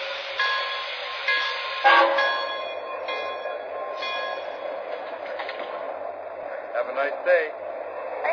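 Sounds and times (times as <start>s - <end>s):
passenger train pulling out of a station: 0.0s - 8.3s
passenger train horn sounding a chord: 1.8s - 2.4s
speech: 7.0s - 7.7s.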